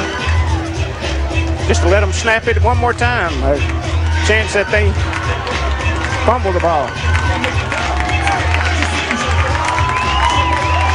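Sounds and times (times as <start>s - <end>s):
large crowd roaring and cheering: 0.0s - 10.9s
laughter: 0.0s - 10.9s
scattered clapping: 0.0s - 10.9s
speech: 1.7s - 5.6s, 6.3s - 7.1s.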